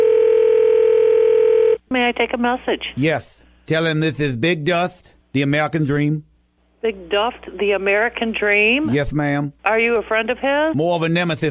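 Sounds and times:
telephone dial tone after hang-up: 0:00.0 - 0:01.8
speech: 0:02.0 - 0:11.4.

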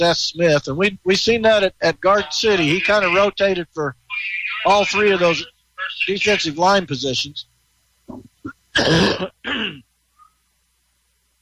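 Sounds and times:
speech: 0:00.0 - 0:07.5, 0:08.1 - 0:09.9
ill person coughing harshly: 0:08.4 - 0:09.8.

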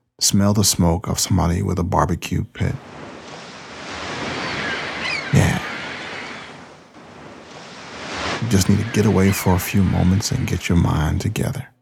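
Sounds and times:
speech: 0:00.2 - 0:03.0, 0:08.5 - 0:11.7
faint wind: 0:02.6 - 0:11.5
ocean waves roaring on the shore: 0:02.8 - 0:10.5.

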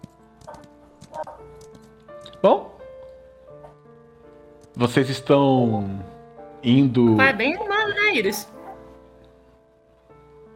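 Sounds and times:
trained horse's hooves clip-clopping on a hard surface walking away: 0:00.0 - 0:02.3
speech: 0:01.2 - 0:02.7, 0:04.8 - 0:08.5.

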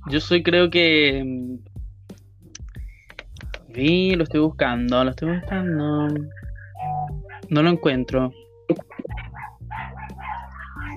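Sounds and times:
speech: 0:00.1 - 0:01.7, 0:03.8 - 0:06.4, 0:07.5 - 0:08.8
dog yelping: 0:06.7 - 0:07.5, 0:08.8 - 0:10.9
dogs snarling and barking in a scuffle: 0:07.2 - 0:07.5, 0:08.8 - 0:10.9.

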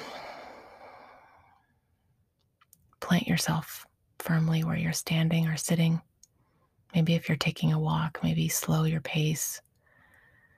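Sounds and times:
deep breath released as a long airy exhale: 0:00.0 - 0:01.6
speech: 0:03.1 - 0:06.1, 0:06.9 - 0:09.7.

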